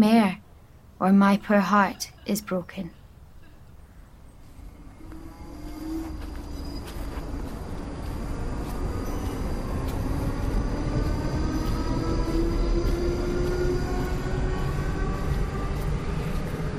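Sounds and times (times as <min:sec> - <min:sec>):
speech: 0:00.0 - 0:00.4, 0:01.0 - 0:03.0
train pulling away from a station in Surrey: 0:04.4 - 0:16.7
train motor whine rising with acceleration: 0:04.5 - 0:16.7.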